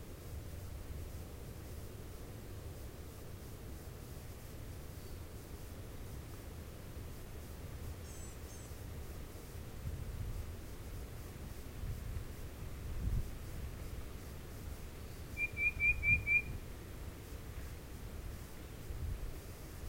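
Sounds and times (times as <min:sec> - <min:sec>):
faint low background hiss and rumble: 0:00.0 - 0:19.8
Tufted titmouse whistling: 0:15.4 - 0:16.5.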